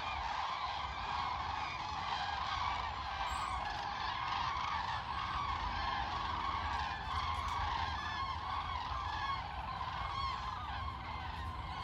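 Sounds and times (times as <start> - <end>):
migrating cranes bugling in flight: 0.0 - 11.8.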